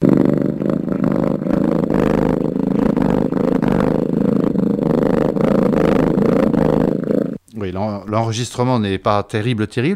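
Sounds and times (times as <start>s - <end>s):
animal purring with low-frequency vocal cord vibration: 0.0s - 7.4s
speech: 7.7s - 9.9s.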